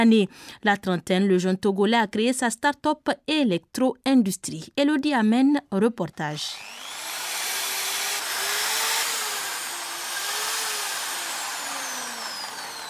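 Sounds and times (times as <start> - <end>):
speech: 0.0 - 7.0
electric drill boring a hole in wood: 6.4 - 12.8.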